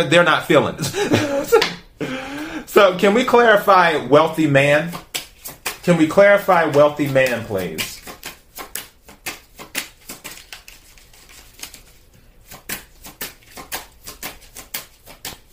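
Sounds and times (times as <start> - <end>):
speech: 0.0 - 5.1, 5.8 - 7.9
tarot cards being shuffled and scattered: 4.9 - 15.5.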